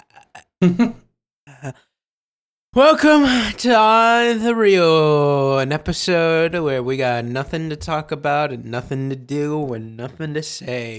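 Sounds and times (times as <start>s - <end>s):
burp: 0.0s - 1.9s
speech: 0.6s - 1.0s, 1.6s - 1.9s, 2.8s - 10.9s.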